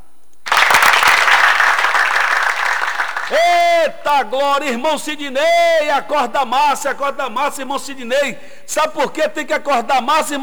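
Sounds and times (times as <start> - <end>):
applause of many hands clapping: 0.5 - 3.8
speech: 3.3 - 10.4.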